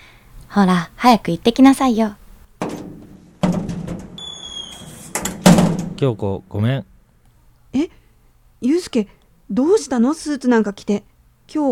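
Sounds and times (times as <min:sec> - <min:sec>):
speech: 0:00.5 - 0:02.2, 0:06.0 - 0:06.9, 0:08.6 - 0:11.6
front door of a house knocking as it settles: 0:02.6 - 0:04.3, 0:05.2 - 0:06.0
front door latch thunk: 0:02.6 - 0:06.0
front door of a house squeaking as it swings: 0:04.1 - 0:05.5.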